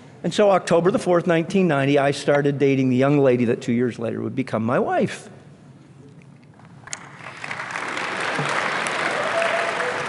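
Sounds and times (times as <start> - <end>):
speech: 0.2 - 5.4
audience applause: 7.0 - 10.0.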